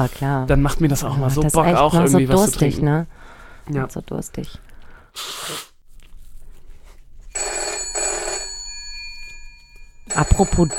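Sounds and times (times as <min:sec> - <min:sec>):
speech: 0:00.0 - 0:05.7, 0:10.2 - 0:10.7
telephone ringing: 0:07.4 - 0:10.7.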